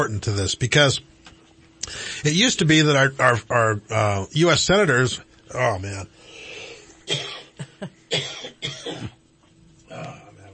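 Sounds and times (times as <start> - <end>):
speech: 0.0 - 1.1, 1.9 - 6.2, 7.1 - 9.2
man having a coughing fit: 7.0 - 9.2.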